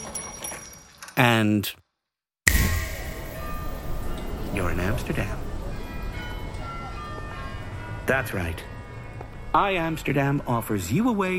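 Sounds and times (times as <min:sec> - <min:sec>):
speech: 0:01.2 - 0:01.8, 0:04.5 - 0:05.4, 0:08.1 - 0:08.7, 0:09.5 - 0:11.3
faint metallic ringing tones: 0:02.5 - 0:10.7
train or tram rumbling past on an Amsterdam street: 0:02.5 - 0:11.3.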